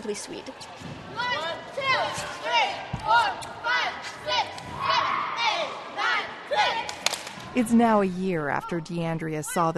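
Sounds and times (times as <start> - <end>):
speech: 0.0 - 7.0, 7.6 - 9.7
girls' sports team shouting during warm-up in a gym: 1.1 - 7.0.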